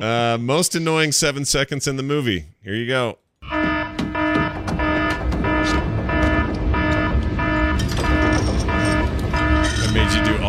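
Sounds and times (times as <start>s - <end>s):
speech: 0.0s - 3.6s
harmonic electronic phone alarm tone beeping: 3.4s - 10.4s.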